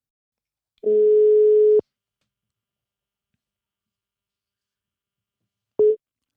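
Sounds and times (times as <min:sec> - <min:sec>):
electronic phone ringback tone: 0:00.9 - 0:01.8.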